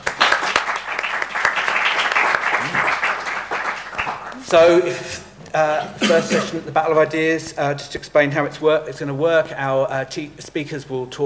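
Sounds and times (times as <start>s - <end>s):
crowd applauding: 0.0s - 4.7s
speech: 4.4s - 11.2s.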